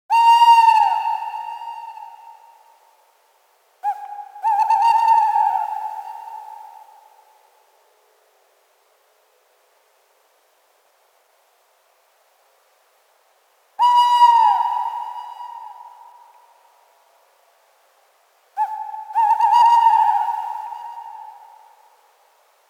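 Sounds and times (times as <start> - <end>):
male tawny owl Strix aluco calling: 0.1 - 2.7, 3.8 - 7.2, 13.8 - 16.6, 18.6 - 21.9.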